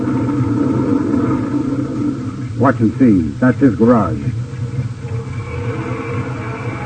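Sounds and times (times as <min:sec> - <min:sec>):
speech: 0:00.0 - 0:00.4, 0:02.6 - 0:04.4
car engine rumbling while driving out of a garage: 0:00.0 - 0:06.8.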